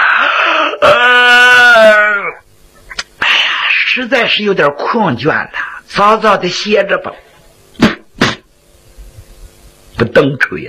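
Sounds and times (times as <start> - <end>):
short breathy intake: 0.0 - 0.9
voice imitating a yawn: 0.0 - 2.4
speech: 4.0 - 7.3, 10.0 - 10.6.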